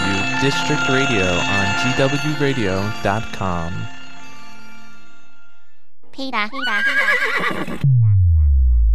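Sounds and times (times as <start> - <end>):
speech: 0.4 - 4.0, 6.2 - 8.0
horse whinnying: 6.6 - 7.8
deep booming tone sliding lower: 7.8 - 8.9.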